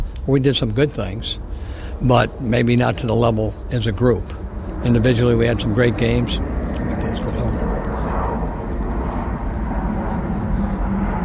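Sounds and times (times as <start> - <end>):
airplane flying overhead: 0.0 - 11.2
speech: 0.2 - 6.9.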